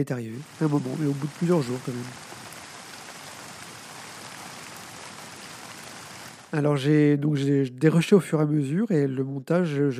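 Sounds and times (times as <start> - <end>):
speech: 0.0 - 2.3, 6.5 - 9.9
rain pattering on hard surfaces: 0.3 - 6.7.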